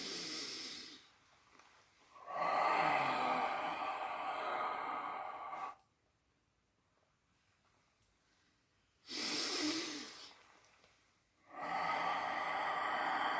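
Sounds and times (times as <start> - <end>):
deep inhalation during a breathing exercise: 2.2 - 5.9, 9.0 - 10.5, 11.4 - 13.3.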